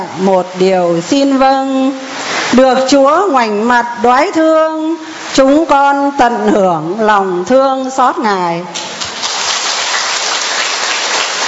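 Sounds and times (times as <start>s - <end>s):
heavy rain pouring down: 0.0s - 3.4s, 8.8s - 11.4s
speech: 0.0s - 8.8s.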